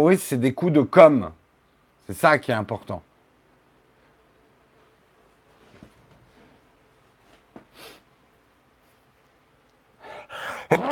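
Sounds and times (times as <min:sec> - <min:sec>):
speech: 0:00.0 - 0:01.4, 0:02.1 - 0:03.1
faint breathing: 0:10.0 - 0:10.7
single loud sneeze: 0:10.6 - 0:10.9.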